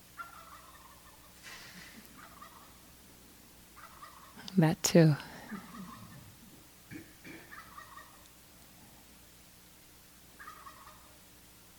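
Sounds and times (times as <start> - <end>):
faint steady hiss: 0.0 - 11.7
turkeys gobbling: 0.1 - 3.0, 3.6 - 4.5, 5.2 - 8.4, 10.4 - 11.2
speech: 4.6 - 5.3.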